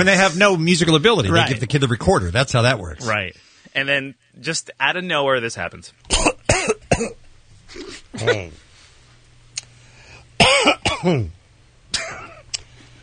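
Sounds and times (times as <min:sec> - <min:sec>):
speech: 0:00.0 - 0:08.6, 0:10.4 - 0:12.2
person coughing after drinking water: 0:06.1 - 0:08.6, 0:10.4 - 0:12.5
throat clearing: 0:06.1 - 0:08.6, 0:10.4 - 0:12.6.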